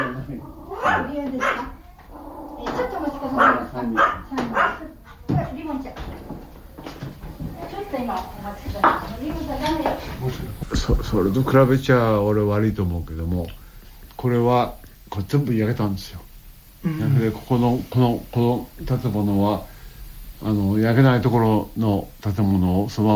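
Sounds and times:
dog barking: 0.0s - 1.9s, 2.5s - 5.1s
speech: 3.8s - 4.6s, 8.0s - 13.6s, 14.2s - 19.7s, 20.4s - 23.1s.

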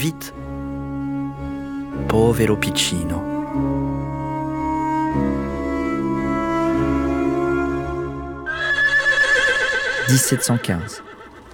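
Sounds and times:
speech: 0.0s - 0.4s, 2.0s - 4.0s, 10.1s - 11.1s
sustained musical tones: 0.0s - 9.7s
horse whinnying: 8.5s - 11.5s.

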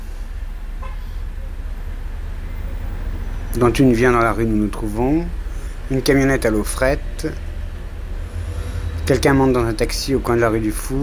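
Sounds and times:
steady low rumble of cars streaming past in street traffic: 0.0s - 11.0s
short car horn toot: 0.8s - 1.6s
speech: 3.6s - 7.4s, 9.1s - 11.0s.

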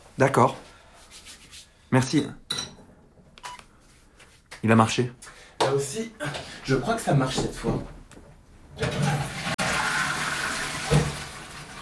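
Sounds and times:
speech: 0.2s - 0.7s, 1.9s - 2.4s, 4.6s - 8.0s
toilet flushing: 8.7s - 11.8s.

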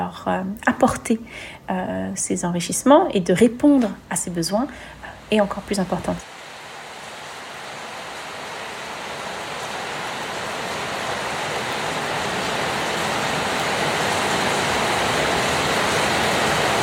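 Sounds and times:
speech: 0.1s - 6.3s
heavy rain downpour: 4.6s - 16.8s.

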